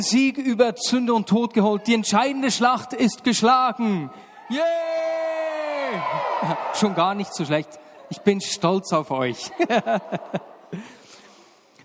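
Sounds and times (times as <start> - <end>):
speech: 0.0 - 5.2, 5.9 - 11.0
crowd cheering loudly: 4.4 - 8.9
one strong voice holding a long downward-sliding whoop: 4.5 - 6.9
laughter: 9.2 - 11.4.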